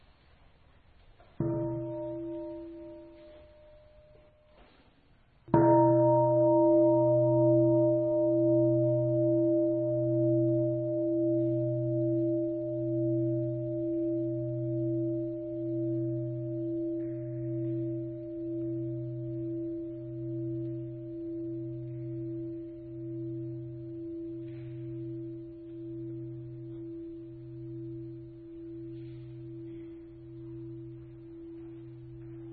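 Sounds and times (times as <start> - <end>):
deep Buddhist temple bell struck by a monk: 1.4 - 4.4, 5.6 - 32.5.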